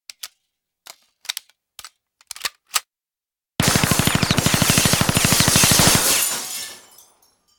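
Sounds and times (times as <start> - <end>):
machine gun loading: 0.2 - 2.8, 3.6 - 6.4
machine gun firing through glass: 3.6 - 7.2.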